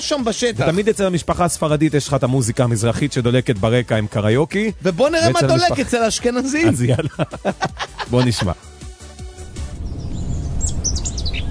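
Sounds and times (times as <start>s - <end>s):
speech: 0.0s - 8.7s
laughter: 5.2s - 8.6s
steady low rumble of noise: 9.4s - 11.4s
birds chirping: 9.7s - 11.4s.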